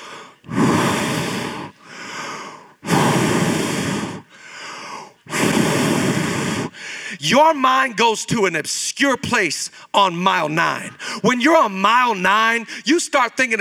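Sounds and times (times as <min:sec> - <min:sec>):
heavy breathing of an exhausted runner in a race: 0:00.0 - 0:07.2, 0:10.9 - 0:11.3
speech: 0:07.2 - 0:13.6.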